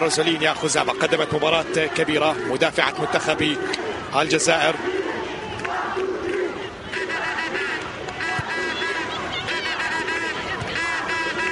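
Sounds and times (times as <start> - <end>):
speech: 0.0 - 5.0
stadium crowd cheering at an Algeria women's national team match: 0.0 - 11.4.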